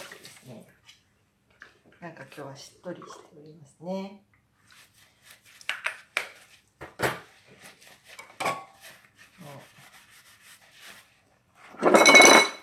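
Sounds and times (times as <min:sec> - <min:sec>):
speech: 0:02.0 - 0:04.3
dishes clinking, knocking and scraping while washing up: 0:11.8 - 0:12.6.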